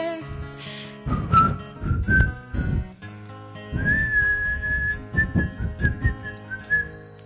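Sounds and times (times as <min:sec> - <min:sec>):
rhythmic thumping low accompaniment: 0:01.0 - 0:03.0, 0:03.7 - 0:06.9
person whistling a tune: 0:01.1 - 0:02.5, 0:03.7 - 0:07.2.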